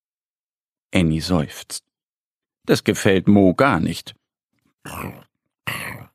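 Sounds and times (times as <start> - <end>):
speech: 0.9 - 1.9, 2.6 - 4.2, 4.8 - 6.0
hungry empty stomach growling: 4.9 - 6.1.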